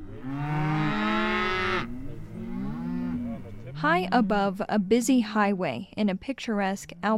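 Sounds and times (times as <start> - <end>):
cows mooing: 0.0 - 5.1
speech: 3.8 - 7.1.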